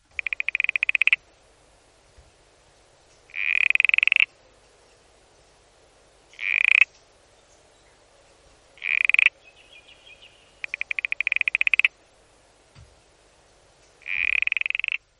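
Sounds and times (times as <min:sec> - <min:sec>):
Tasmanian smooth frog calling in rasping pulsed trills: 0:00.0 - 0:01.3, 0:03.3 - 0:04.5, 0:06.3 - 0:07.0, 0:08.0 - 0:12.0, 0:14.0 - 0:15.1.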